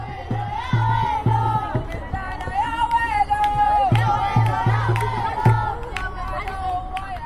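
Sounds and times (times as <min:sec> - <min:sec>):
spectators cheering and shouting at a soccer match: 0:00.0 - 0:05.8.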